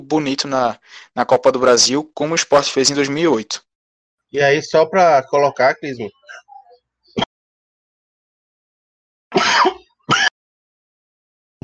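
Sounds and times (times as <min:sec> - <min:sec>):
speech: 0:00.1 - 0:03.7, 0:04.3 - 0:06.4
person coughing loudly: 0:09.3 - 0:10.3.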